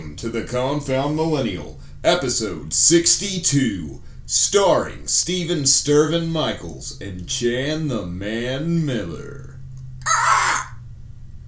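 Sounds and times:
faint steady hum: 0:00.0 - 0:11.4
speech: 0:00.2 - 0:09.5
person voicing a harsh screechy bird call: 0:10.0 - 0:10.8.

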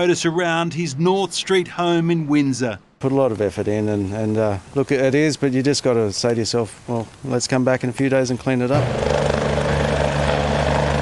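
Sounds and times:
speech: 0:00.0 - 0:09.2
rescue helicopter flying overhead: 0:08.8 - 0:11.0.

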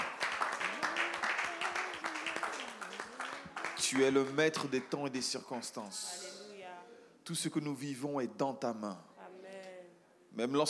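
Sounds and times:
voices calling out and cheering: 0:00.0 - 0:04.4
church audience clapping: 0:00.0 - 0:05.9
speech: 0:03.9 - 0:06.3, 0:07.3 - 0:09.1, 0:10.4 - 0:10.6.

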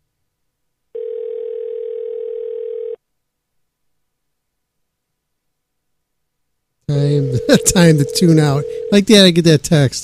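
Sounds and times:
telephone ringback tone through the phone line: 0:01.0 - 0:03.0, 0:07.0 - 0:09.1
speech: 0:06.9 - 0:10.0.

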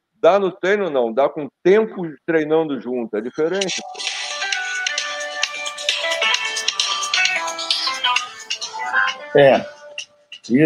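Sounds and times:
speech: 0:00.2 - 0:04.1, 0:09.3 - 0:09.8, 0:10.4 - 0:10.6
phone ringtone from an incoming call, bright electronic melody: 0:03.4 - 0:10.5.

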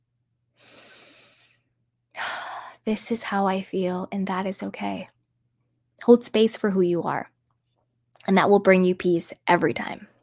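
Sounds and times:
person breathing deeply: 0:00.6 - 0:02.8
speech: 0:02.9 - 0:05.2, 0:06.0 - 0:07.3, 0:08.2 - 0:10.1.

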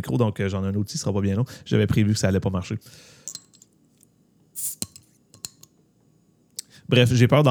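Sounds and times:
speech: 0:00.0 - 0:03.3, 0:06.9 - 0:07.5
glass bottle clinking and tapping on a table: 0:03.3 - 0:03.7, 0:04.6 - 0:05.7.

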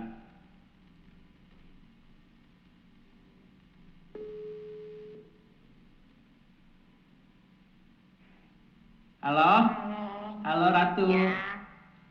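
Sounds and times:
low hiss: 0:00.0 - 0:12.0
ringback tone from an outgoing phone call: 0:04.2 - 0:05.2
speech: 0:09.2 - 0:11.5.

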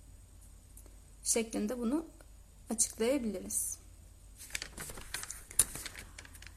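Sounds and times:
speech: 0:01.3 - 0:03.8
paper rustling and crinkling as a book is handled: 0:04.4 - 0:06.5.

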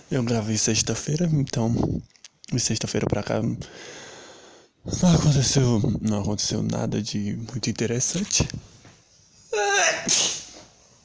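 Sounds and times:
speech: 0:00.1 - 0:04.1, 0:04.8 - 0:08.8, 0:09.5 - 0:10.4
loud sneeze: 0:09.6 - 0:10.7.

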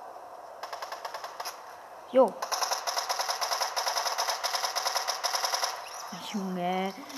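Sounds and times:
rapid automatic gunfire in a video game: 0:00.6 - 0:01.7, 0:02.4 - 0:06.2
speech: 0:02.1 - 0:02.5, 0:06.2 - 0:07.1.

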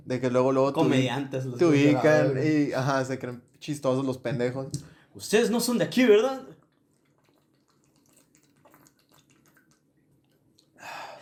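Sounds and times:
speech: 0:00.1 - 0:06.6
someone sipping and swallowing water: 0:06.5 - 0:10.8
short breathy exhale: 0:10.8 - 0:11.2.

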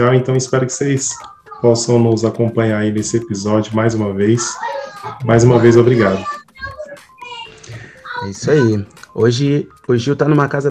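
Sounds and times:
speech: 0:00.0 - 0:06.5, 0:08.2 - 0:10.6
children chattering and calling out while playing at a house: 0:00.6 - 0:02.9, 0:03.5 - 0:09.0.

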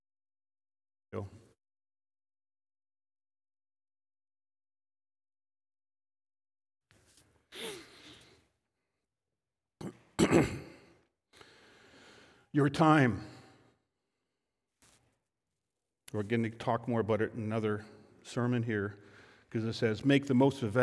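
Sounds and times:
speech: 0:01.1 - 0:01.4, 0:12.5 - 0:13.3, 0:16.1 - 0:20.8
nose blowing: 0:07.5 - 0:08.4
sniff: 0:07.5 - 0:08.4.

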